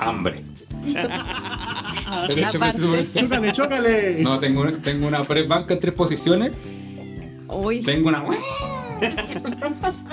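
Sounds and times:
laughter: 0:00.0 - 0:05.7, 0:08.7 - 0:10.1
speech: 0:00.1 - 0:06.8, 0:07.5 - 0:10.1
cat meowing: 0:06.8 - 0:09.4.

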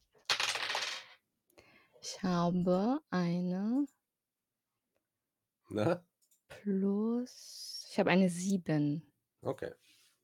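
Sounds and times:
dice rolled across a hard tabletop: 0:00.2 - 0:01.2
speech: 0:02.0 - 0:04.0, 0:05.7 - 0:09.9.

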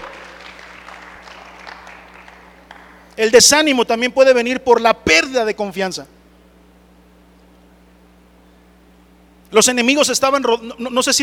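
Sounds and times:
audience applauding: 0:00.0 - 0:03.1
speech: 0:03.2 - 0:06.2, 0:09.6 - 0:11.2.

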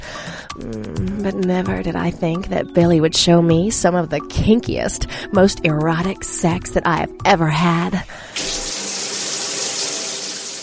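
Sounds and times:
speech: 0:00.6 - 0:08.6
shower water running: 0:08.4 - 0:10.6.

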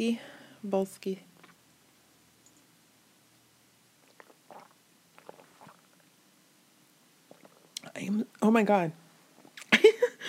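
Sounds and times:
speech: 0:00.0 - 0:01.3, 0:08.0 - 0:09.0
person gulping water from a 64-fluid-ounce container: 0:04.0 - 0:06.1, 0:07.3 - 0:07.9, 0:09.4 - 0:09.8.

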